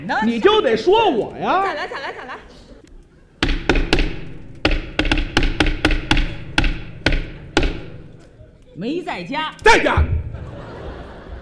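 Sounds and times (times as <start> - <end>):
speech: 0.1 - 2.3, 8.8 - 10.2
laughter: 1.4 - 2.9, 10.2 - 11.3
knocking on a door in a stage comedy routine: 3.4 - 8.2.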